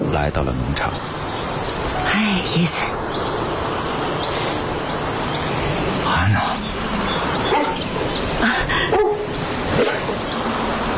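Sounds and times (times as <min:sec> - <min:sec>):
steady hiss: 0:00.0 - 0:10.9
speech: 0:00.2 - 0:01.5, 0:02.2 - 0:03.4
dog barking and whimpering: 0:08.9 - 0:09.3.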